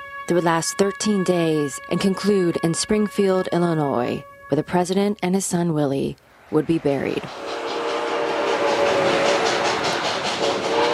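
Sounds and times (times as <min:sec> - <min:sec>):
speech: 0:00.3 - 0:07.5
steam train rolling along the rails: 0:06.6 - 0:10.9.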